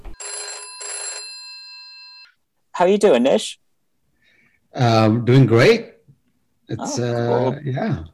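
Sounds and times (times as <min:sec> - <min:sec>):
telephone ringing as a call is placed: 0:00.1 - 0:02.4
speech: 0:02.8 - 0:03.6, 0:04.7 - 0:05.9, 0:06.7 - 0:08.1.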